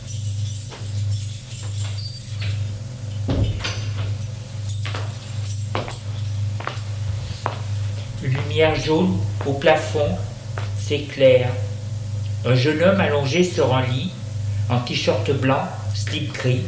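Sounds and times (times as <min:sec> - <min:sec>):
keys rattling and clicking in a lock: 0:00.0 - 0:02.7
steady low hum: 0:00.0 - 0:16.6
heavier clunk of a door opening: 0:03.2 - 0:04.1
speech: 0:08.6 - 0:10.3, 0:10.9 - 0:11.7, 0:12.4 - 0:16.6.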